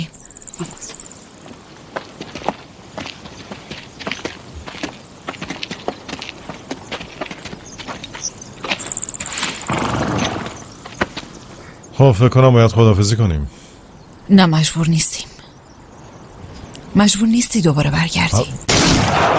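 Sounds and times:
horse hooves clip-clopping as a horse-drawn carriage moves off: 0.6s - 11.6s
speech: 12.0s - 13.7s, 14.3s - 15.2s, 17.0s - 19.3s.

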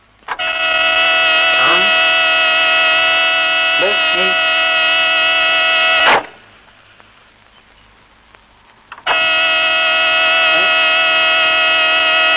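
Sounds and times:
stuck car horn blaring: 0.4s - 6.4s, 9.0s - 12.3s.

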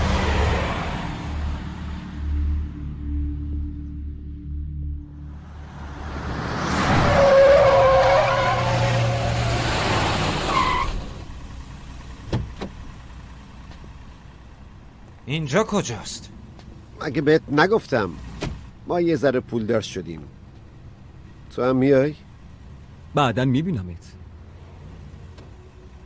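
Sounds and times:
car tires screeching: 0.0s - 2.2s, 5.3s - 23.4s
car engine roaring while driven hard: 0.0s - 4.3s, 5.0s - 26.0s
speech: 15.4s - 16.4s, 17.0s - 18.3s, 18.9s - 20.4s, 21.5s - 22.2s, 23.1s - 24.2s.

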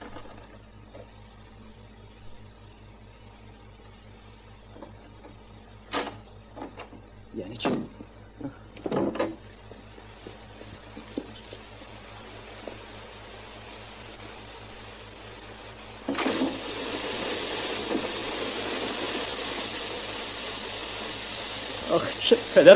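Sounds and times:
quiet hiss: 0.2s - 22.7s
speech: 7.4s - 7.9s, 22.0s - 22.7s
faint clinks: 11.1s - 13.6s
water gushing from a leaking pipe: 16.1s - 22.7s.

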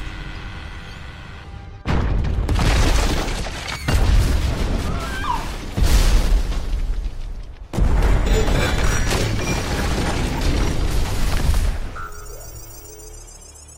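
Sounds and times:
crashing, shattering debris: 1.9s - 12.7s
loud booming explosions from a car: 3.9s - 11.9s.

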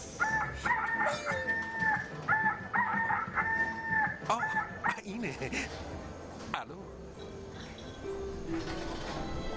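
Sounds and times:
rooster crowing: 0.2s - 4.7s
farmyard noise: 0.2s - 9.4s.

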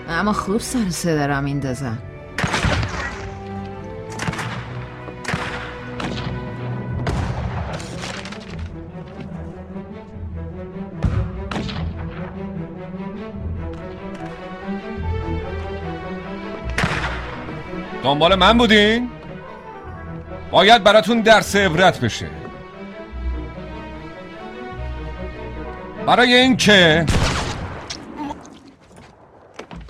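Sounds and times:
orchestral music bed: 0.0s - 28.1s
speech: 0.1s - 2.1s, 18.1s - 19.2s, 20.5s - 22.4s, 26.1s - 27.2s
gunshots: 2.4s - 3.4s, 4.1s - 8.4s, 16.7s - 17.5s, 27.0s - 28.4s.

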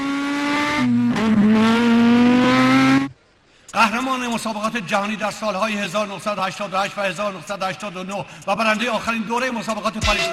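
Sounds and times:
race car engine roar while braking into a left turn: 0.0s - 3.2s
speech: 4.0s - 10.3s.

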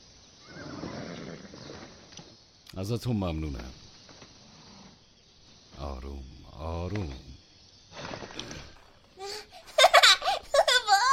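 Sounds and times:
steady hiss: 0.0s - 11.1s
horse whinnying: 0.4s - 1.9s
speech: 2.8s - 3.8s, 6.0s - 7.3s.

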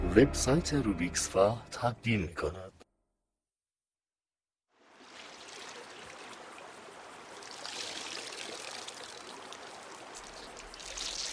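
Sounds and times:
speech: 0.1s - 2.7s
river water rushing: 4.8s - 11.3s.

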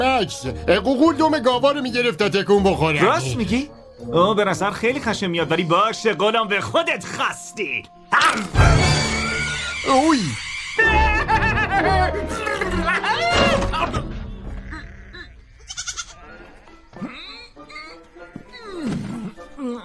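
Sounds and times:
speech: 0.0s - 9.2s, 9.8s - 13.2s
laugh-like sounds: 8.2s - 19.8s
sheep bleating: 14.6s - 18.6s.

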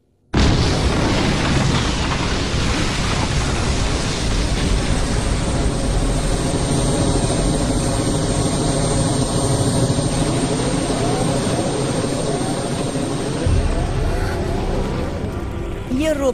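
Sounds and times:
explosion blast: 0.4s - 7.9s, 13.1s - 15.9s
heavy roaring rumble with deep bass: 0.6s - 16.3s
speech: 16.1s - 16.3s.

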